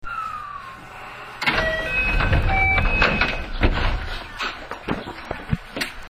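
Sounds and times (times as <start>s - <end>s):
223 series 1000 train door opening: 1.4s - 4.6s
train door rattling during opening and closing: 1.4s - 5.1s.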